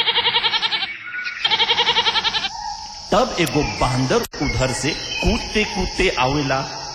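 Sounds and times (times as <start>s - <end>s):
goat bleating: 0.0s - 2.5s
speech: 3.1s - 6.8s.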